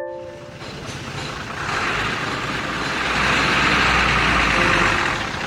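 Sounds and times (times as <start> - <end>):
dirt-hauling dump truck diesel engine roaring: 0.2 - 5.4
heavy dump truck horn blasts: 1.6 - 5.4.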